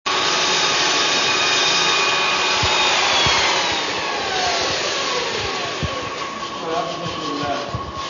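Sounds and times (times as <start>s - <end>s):
electric sanding machine: 0.1s - 8.0s.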